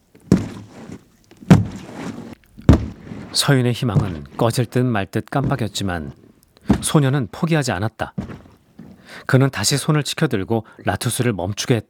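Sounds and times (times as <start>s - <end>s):
giant creature heavy footsteps echoing in a cave: 0.0s - 4.7s, 5.4s - 7.3s
speech: 3.3s - 6.2s, 6.8s - 8.3s, 9.2s - 11.8s.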